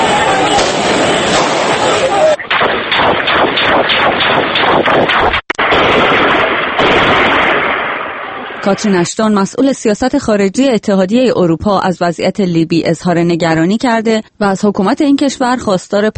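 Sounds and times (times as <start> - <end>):
gunfire bursts: 0.2 - 8.8
speech: 8.7 - 16.1.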